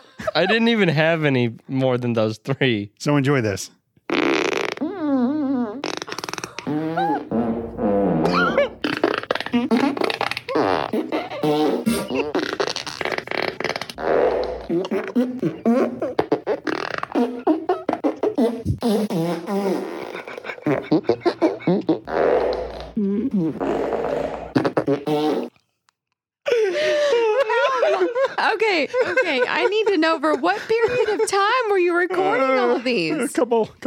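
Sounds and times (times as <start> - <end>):
laughter: 0.0 - 0.8, 20.1 - 21.9, 26.5 - 33.6
speech: 0.3 - 4.4, 33.0 - 33.8
remix of recorded fart noises layered and edited together: 4.1 - 25.6.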